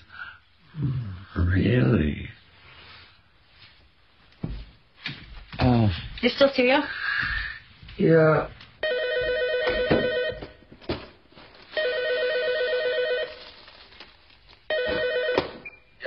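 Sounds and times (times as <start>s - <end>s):
speech: 0.8s - 2.3s, 6.2s - 7.0s, 8.0s - 8.6s
telephone ringing in electronic trilling bursts: 8.8s - 10.7s, 11.7s - 13.6s, 14.7s - 15.9s.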